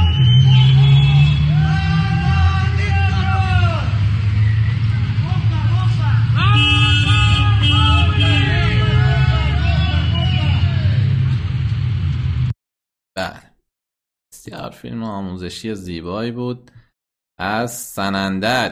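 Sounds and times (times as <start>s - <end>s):
car horns honking during a street protest in Sanandaj: 0.0s - 4.0s, 6.3s - 11.2s
noisy crowd shouting at a street protest: 0.0s - 4.1s, 5.9s - 11.2s
steady rumble of street traffic: 0.0s - 12.5s
speech: 14.7s - 16.8s, 17.4s - 18.7s.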